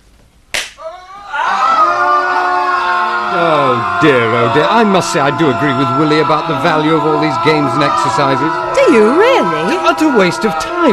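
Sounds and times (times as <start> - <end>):
single sharp clap: 0.5 - 0.8
group of people screaming primal screams: 0.8 - 10.9
speech: 4.0 - 10.9.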